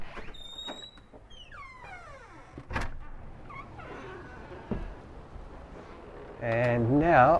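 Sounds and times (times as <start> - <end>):
door creaking open: 0.0 - 5.3
speech: 6.4 - 7.3.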